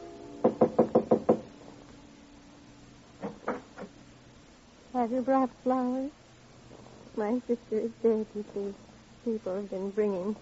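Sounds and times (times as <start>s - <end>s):
knocking on a panel apartment door off a carpeted hallway: 0.4s - 1.5s, 3.2s - 3.9s
speech: 5.1s - 6.2s, 7.2s - 10.4s.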